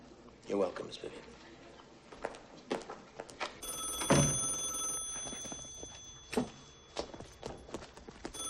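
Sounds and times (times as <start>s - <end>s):
speech: 0.5s - 1.6s
knocks and footstep-like clatter in the room: 2.1s - 8.4s
telephone ringing: 3.6s - 7.4s.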